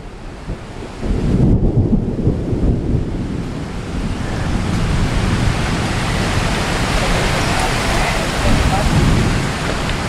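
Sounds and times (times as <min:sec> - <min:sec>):
distant thunder rumbling from lightning striking the far bank: 0:00.0 - 0:10.0
heavy rain hissing by the Madeira River: 0:00.0 - 0:10.0.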